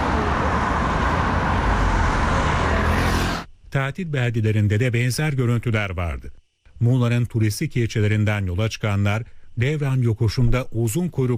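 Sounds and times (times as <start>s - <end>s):
heavy highway traffic passing: 0.0s - 3.5s
speech: 3.7s - 11.3s.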